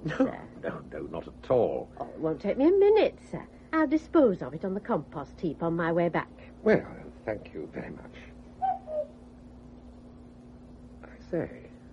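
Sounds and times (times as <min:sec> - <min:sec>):
steady low hum: 0:00.0 - 0:11.9
speech: 0:01.5 - 0:08.3, 0:11.3 - 0:11.6
cuckoo calling: 0:08.6 - 0:09.2.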